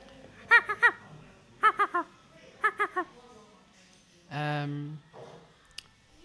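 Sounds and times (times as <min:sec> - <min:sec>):
person imitating seagull calls: 0:00.5 - 0:01.0, 0:01.6 - 0:03.1.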